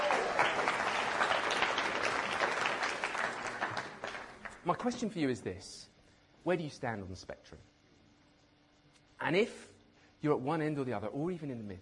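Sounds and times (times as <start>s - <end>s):
sustained audience applause: 0.0s - 4.6s
speech: 4.7s - 7.7s, 9.2s - 11.7s.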